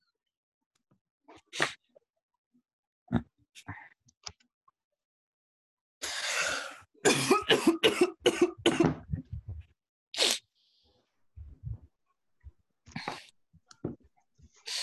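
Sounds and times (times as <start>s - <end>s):
person coughing harshly: 7.0s - 9.1s.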